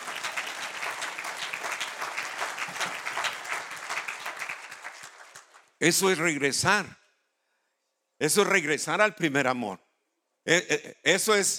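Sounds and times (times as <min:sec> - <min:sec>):
audience applauding: 0:00.0 - 0:05.8
speech: 0:05.8 - 0:07.0, 0:08.2 - 0:09.8, 0:10.4 - 0:11.5.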